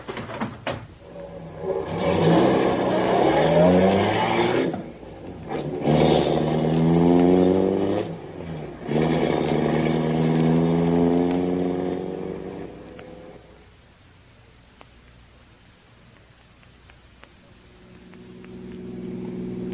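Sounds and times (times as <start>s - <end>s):
car engine starting, revving and driving off: 1.1s - 13.4s, 17.9s - 19.7s.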